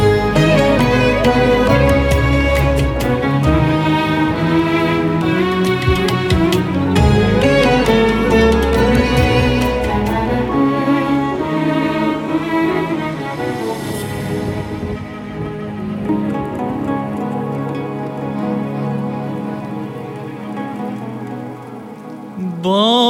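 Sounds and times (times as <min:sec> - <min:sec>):
rain pattering on a surface: 0:00.0 - 0:23.0
sustained tonal music: 0:00.0 - 0:23.0.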